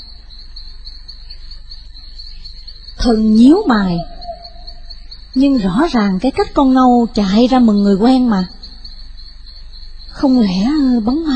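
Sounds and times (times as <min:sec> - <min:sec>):
crickets chirping at night: 0:00.0 - 0:11.3
low constant hum of night ambience: 0:00.0 - 0:11.3
speech: 0:03.0 - 0:04.1, 0:05.3 - 0:08.6, 0:10.2 - 0:11.3.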